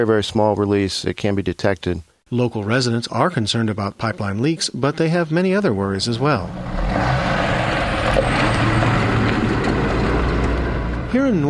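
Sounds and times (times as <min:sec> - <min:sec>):
speech: 0:00.0 - 0:07.2, 0:11.1 - 0:11.4
heavy trucks rumbling along a gravel road: 0:06.3 - 0:11.4.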